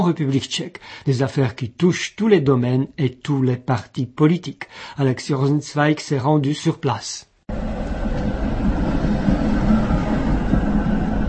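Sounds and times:
speech: 0.0s - 8.2s
tram rolling past a tram station in the Czech Republic: 7.5s - 11.2s.

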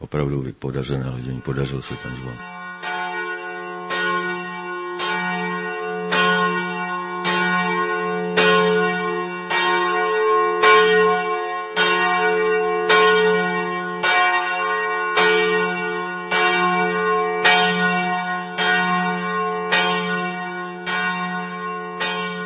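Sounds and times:
person speaking: 0.0s - 2.4s
large deep-toned church bell tuned in F1 tolling: 0.9s - 22.4s.

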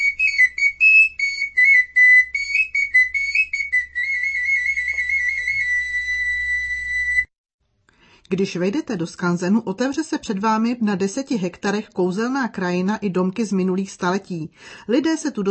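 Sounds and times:
small wooden folk pipe playing a shrill high tune: 0.0s - 7.3s
speech: 8.3s - 15.4s.

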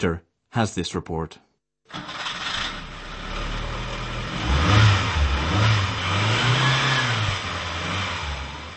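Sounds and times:
speech: 0.0s - 2.1s
Škoda Favorite car engine starting and revving: 1.9s - 8.7s.

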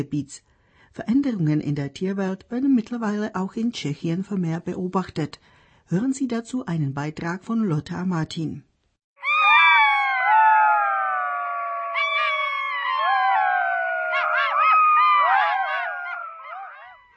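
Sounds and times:
speech: 0.0s - 8.7s
golden jackals howling in chorus: 9.2s - 17.1s.

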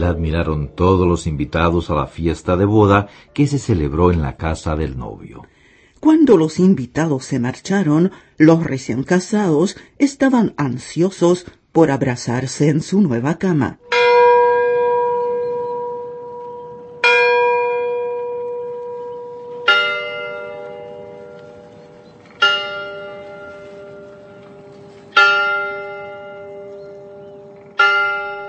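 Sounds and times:
speech: 0.0s - 14.1s
church tower bells chiming midnight: 13.8s - 28.4s.

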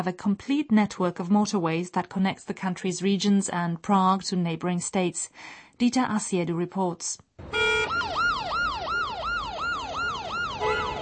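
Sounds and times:
speech: 0.0s - 8.5s
ambulance siren yelping in congested traffic: 7.4s - 11.0s
low rumble of congested road traffic: 7.4s - 11.0s.

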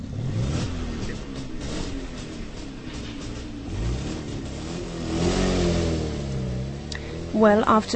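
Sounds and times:
car engine cranking, starting and revving: 0.0s - 7.9s
speech: 7.4s - 7.9s.

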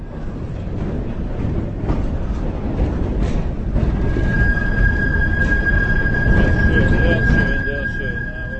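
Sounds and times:
tram rumbling along in Prague: 0.0s - 8.5s
high metallic screech from tram wheels turning a curve: 4.0s - 8.5s.

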